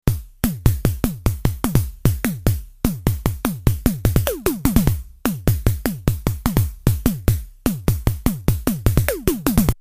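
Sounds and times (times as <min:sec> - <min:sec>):
tom drum: 0:00.0 - 0:09.8
synthesizer: 0:03.7 - 0:09.8.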